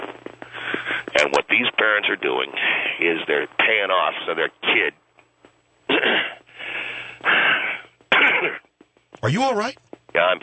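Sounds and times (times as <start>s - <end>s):
speech: 1.2s - 5.0s, 9.2s - 10.4s
labored wheezy breathing of an upset person: 6.3s - 7.9s.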